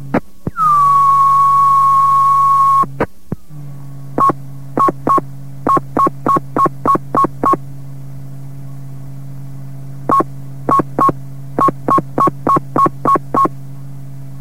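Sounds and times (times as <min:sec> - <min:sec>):
low hum under radio channel: 0:00.0 - 0:14.3
long steady fire alarm box code beep over a radio channel: 0:04.2 - 0:07.6, 0:10.1 - 0:13.5.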